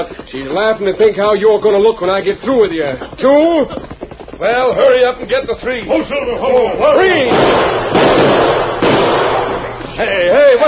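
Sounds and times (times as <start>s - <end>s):
speech: 0.0s - 8.7s, 10.0s - 10.6s
gunshots in a radio western scene shooting a gun out of a hand: 6.9s - 10.2s.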